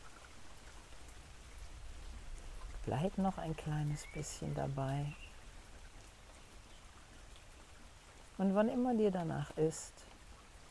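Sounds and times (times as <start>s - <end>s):
dense rainfall from a summer thunderstorm: 0.0s - 10.6s
speech: 2.8s - 5.3s, 8.4s - 10.1s.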